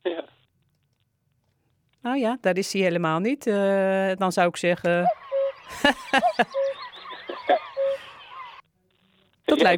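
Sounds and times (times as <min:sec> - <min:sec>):
speech: 0:02.0 - 0:06.6, 0:09.6 - 0:09.7
cuckoo calling: 0:04.9 - 0:08.6
laughter: 0:04.9 - 0:08.6.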